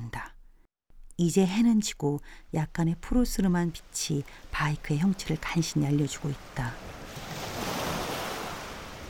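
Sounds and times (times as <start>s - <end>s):
speech: 1.2s - 7.0s
strong waves crashing on the Jeju Island coast: 3.2s - 9.0s.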